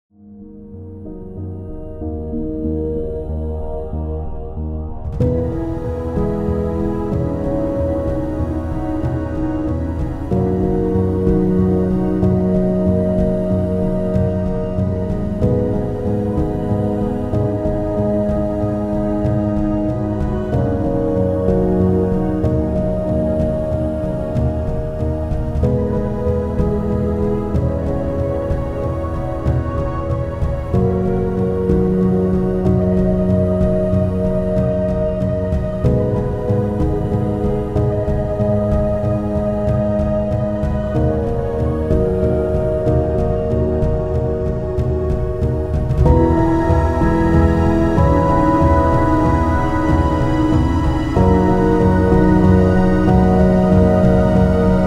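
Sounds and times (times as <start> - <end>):
cinematic soundtrack music: 0.1 - 54.8.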